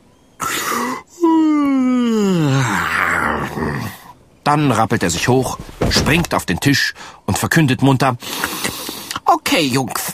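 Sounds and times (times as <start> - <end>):
person giving a long exaggerated yawn: 0.4 - 3.9
speech: 4.5 - 8.7, 9.6 - 10.1.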